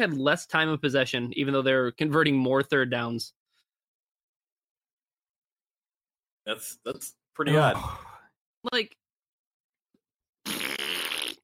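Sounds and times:
speech: 0.0 - 3.4, 6.5 - 9.0
wet fart: 10.4 - 11.4.

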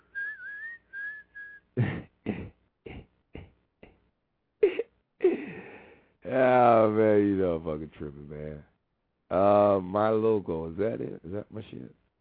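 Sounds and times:
person whistling a short song tune: 0.0 - 1.6
speech: 1.8 - 2.1, 6.9 - 12.0.

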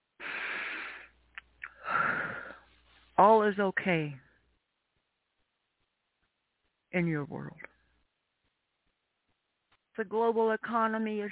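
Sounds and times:
slow deep breath during guided breathing: 0.2 - 2.8
speech: 3.5 - 4.2, 7.0 - 7.7, 10.0 - 11.3.

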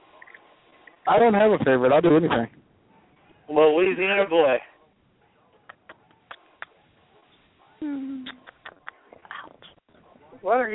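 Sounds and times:
speech: 1.0 - 2.6, 3.5 - 4.7, 10.4 - 10.7
person kissing a pet cat: 5.6 - 6.8, 7.8 - 9.8.

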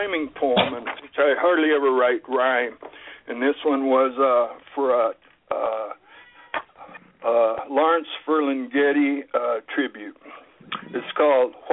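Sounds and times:
speech: 0.0 - 5.7, 7.2 - 11.7
cat meowing: 6.1 - 7.0.

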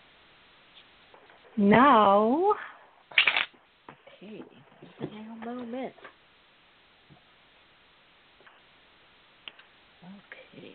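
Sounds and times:
speech: 1.6 - 2.7, 4.2 - 6.2
deck of cards being shuffled during a card reading: 3.1 - 3.6.

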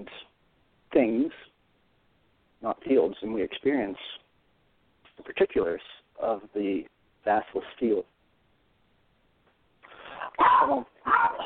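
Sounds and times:
speech: 0.9 - 1.5, 2.6 - 4.2, 5.2 - 8.1, 10.4 - 11.4
dog barking: 10.2 - 11.4.

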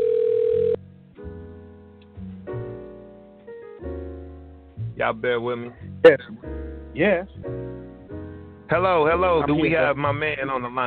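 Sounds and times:
telephone dial tone: 0.0 - 0.8
speech: 5.0 - 7.6, 8.7 - 10.8.

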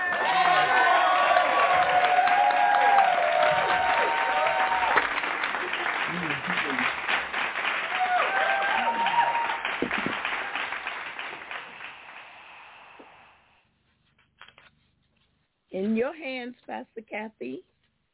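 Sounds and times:
voices calling out and cheering: 0.0 - 6.9, 7.9 - 9.7
church audience in a sanctuary clapping in welcome: 0.0 - 13.2
speech: 16.5 - 17.7.

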